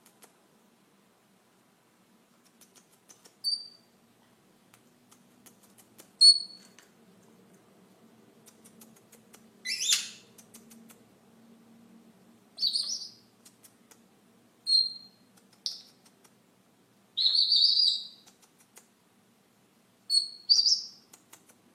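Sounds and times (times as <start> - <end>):
Senegal parrot squawking and whistling: 6.2 - 6.6, 9.6 - 10.2, 12.6 - 13.2, 14.7 - 15.8, 17.2 - 18.2, 20.1 - 21.0.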